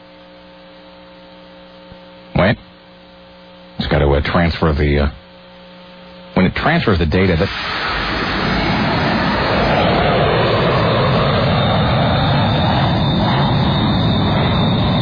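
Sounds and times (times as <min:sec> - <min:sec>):
speech: 0:04.3 - 0:05.2, 0:06.6 - 0:08.2
airplane engine drone: 0:06.4 - 0:15.0.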